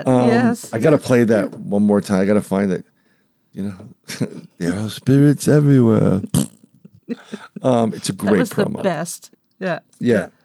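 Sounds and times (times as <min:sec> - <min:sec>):
speech: 0:00.0 - 0:02.9, 0:03.6 - 0:10.4
fart with low sputtering pops and raspy flutter: 0:06.1 - 0:06.8
laughter: 0:07.1 - 0:09.0.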